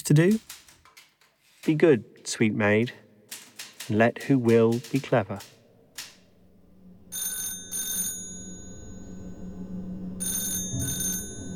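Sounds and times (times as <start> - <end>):
speech: 0.1 - 0.5, 1.6 - 3.0, 3.9 - 5.5
low hum: 5.6 - 11.5
old-fashioned telephone bell ringing: 7.0 - 11.5.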